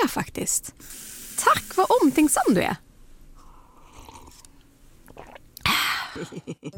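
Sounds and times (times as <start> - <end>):
speech: 0.0 - 2.8, 6.2 - 6.7
wet hissing rush of water: 0.8 - 2.6
person gulping a big mouthful of water: 3.9 - 5.8.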